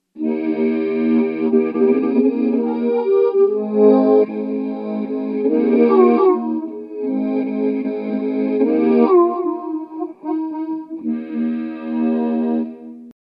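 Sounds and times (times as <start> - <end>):
chorus phase flange detune effect: 0.0 - 13.1.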